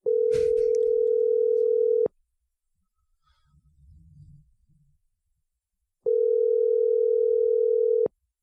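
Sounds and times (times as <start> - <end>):
ringback tone of an outgoing telephone call: 0.0 - 2.1, 6.1 - 8.1.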